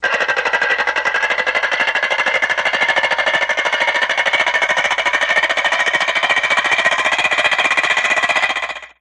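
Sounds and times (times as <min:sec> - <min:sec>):
ratchet winding up: 0:00.0 - 0:08.9.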